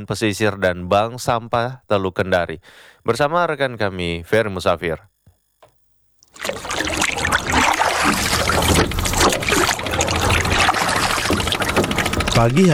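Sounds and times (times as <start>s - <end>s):
speech: 0.0s - 5.1s, 6.4s - 6.7s, 12.4s - 12.7s
water splashing and trickling from a small boat being paddled: 6.4s - 12.7s.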